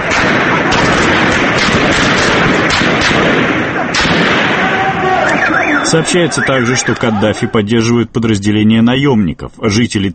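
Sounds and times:
gunfire in city streets: 0:00.0 - 0:07.4
speech: 0:05.9 - 0:10.1.

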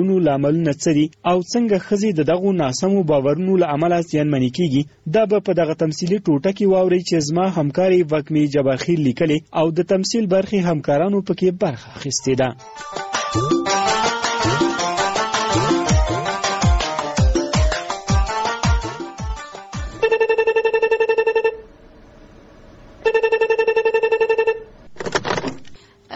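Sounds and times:
speech: 0:00.0 - 0:13.9
telephone ringtone for an incoming call: 0:12.6 - 0:17.5, 0:19.0 - 0:21.7, 0:23.0 - 0:25.8.

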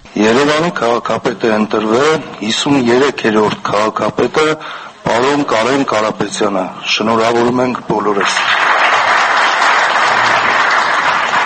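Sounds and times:
speech: 0:00.2 - 0:08.7
standing ovation applause at a city council vote: 0:08.2 - 0:11.4.

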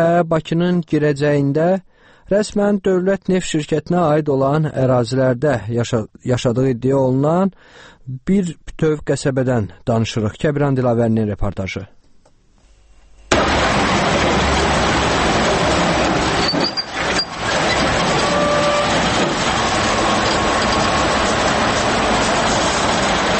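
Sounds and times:
speech: 0:00.0 - 0:12.0
oil pumpjacks running in an oil field at the entrance to Baku: 0:13.3 - 0:23.3.

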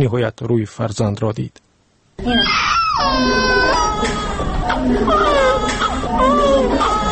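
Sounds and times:
speech: 0:00.0 - 0:01.6, 0:02.2 - 0:07.0
newborn baby boy crying in a maternity hospital: 0:02.2 - 0:07.1.

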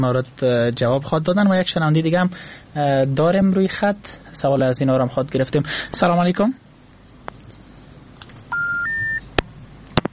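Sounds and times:
speech: 0:00.0 - 0:06.6
two-note electronic beep as a telephone line disconnects: 0:08.5 - 0:09.3.

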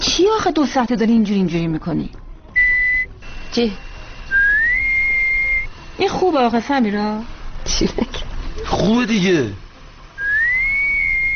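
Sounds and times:
speech: 0:00.2 - 0:02.2, 0:03.5 - 0:03.8, 0:06.0 - 0:09.6
sustained whistle: 0:02.6 - 0:06.0, 0:10.2 - 0:11.3.

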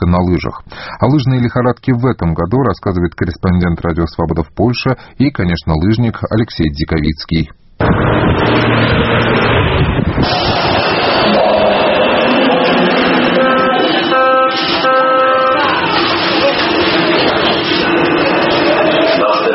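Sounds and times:
speech: 0:00.1 - 0:10.7
passing vehicles whining in Warsaw city street: 0:07.8 - 0:19.5
vehicle engines roaring and rumbling in Warsaw morning city traffic: 0:07.8 - 0:19.5
indistinct murmur of voices on Warsaw city street: 0:11.3 - 0:19.5.

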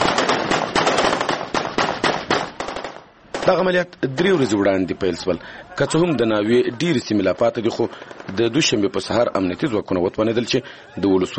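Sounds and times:
celebratory gunfire fired into the air by soldiers in a district bazaar: 0:00.0 - 0:03.7, 0:07.7 - 0:08.8
speech: 0:03.5 - 0:11.3
laughter: 0:04.0 - 0:08.0, 0:09.5 - 0:11.3.

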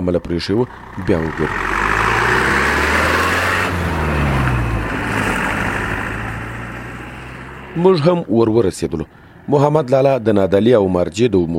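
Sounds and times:
speech: 0:00.0 - 0:02.5, 0:07.8 - 0:11.5
road and wind noise: 0:00.0 - 0:11.5
motorcycle speeding along a main road: 0:00.2 - 0:09.5.

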